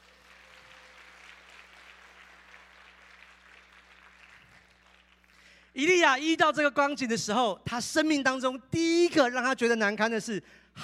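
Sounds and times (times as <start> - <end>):
large audience applauding small group leaders: 0.0 - 5.5
faint low electrical hum: 0.0 - 10.8
speech: 5.8 - 10.8.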